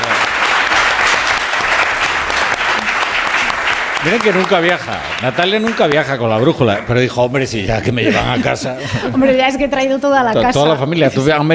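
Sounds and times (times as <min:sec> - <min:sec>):
audience applause at a show: 0:00.0 - 0:07.7
speech: 0:04.0 - 0:11.5
laughter: 0:07.6 - 0:09.6.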